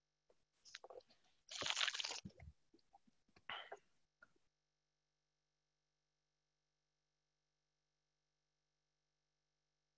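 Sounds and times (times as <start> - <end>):
person slurping coffee: 0.7 - 2.3
mouth and swallowing noises: 0.7 - 3.1.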